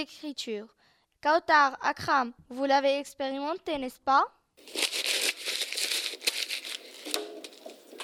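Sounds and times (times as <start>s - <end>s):
speech: 0.0s - 5.0s
paper being crumpled: 4.6s - 8.0s.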